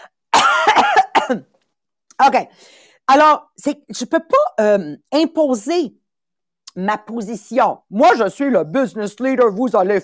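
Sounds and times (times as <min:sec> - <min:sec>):
small raspy cough: 0:00.3 - 0:01.6
speech: 0:01.3 - 0:01.5, 0:02.2 - 0:06.0, 0:06.8 - 0:10.0.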